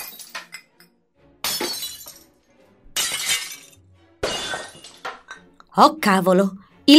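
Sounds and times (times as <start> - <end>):
glass breaking and shattering: 0.0 - 0.8, 1.4 - 5.4
speech: 5.8 - 6.9.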